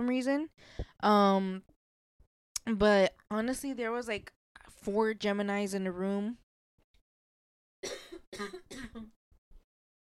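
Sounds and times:
speech: 0.0s - 1.7s, 2.6s - 6.4s, 7.8s - 9.2s
loud harsh coughs: 7.8s - 9.1s
person clearing throat: 7.8s - 9.1s.

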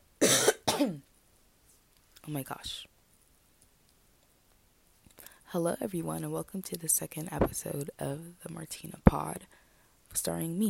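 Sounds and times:
person coughing with a slight voiced rasp: 0.2s - 1.0s
speech: 0.8s - 1.1s, 2.3s - 2.9s, 5.5s - 10.6s.

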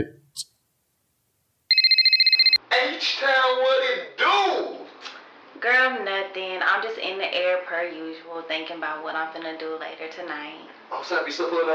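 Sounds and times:
speech: 0.0s - 0.5s, 3.0s - 4.8s, 5.6s - 11.7s
phone ringtone electronic trill: 1.7s - 2.6s.

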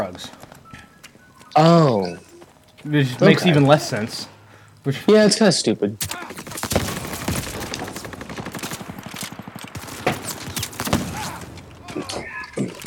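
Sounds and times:
speech: 0.0s - 0.4s, 1.6s - 2.1s, 2.8s - 6.4s
video game gunfire: 6.0s - 11.9s.

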